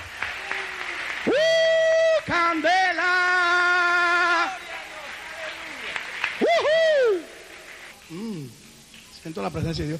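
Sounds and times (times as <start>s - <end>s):
audience applauding: 0.0s - 8.0s
speech: 2.3s - 2.8s, 9.2s - 9.9s.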